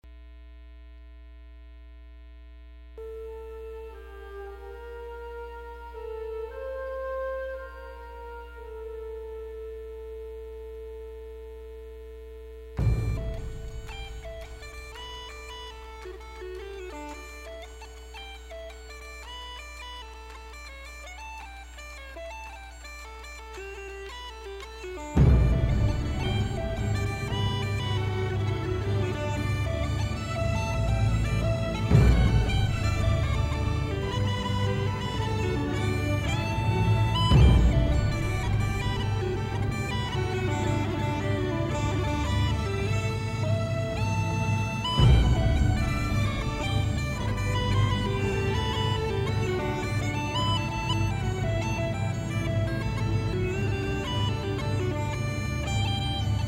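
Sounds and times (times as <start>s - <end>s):
bagpipes playing: 3.0s - 10.9s, 12.8s - 56.4s.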